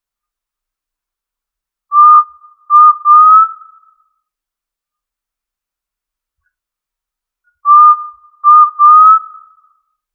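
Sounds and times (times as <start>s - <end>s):
quail giving a pure whistled three-note call: 1.9s - 4.0s, 7.6s - 9.8s.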